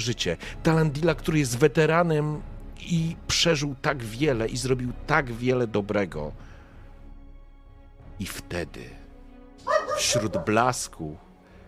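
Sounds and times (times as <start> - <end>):
speech: 0.0 - 6.5, 8.2 - 9.0, 10.0 - 11.2
dog barking: 9.7 - 10.7.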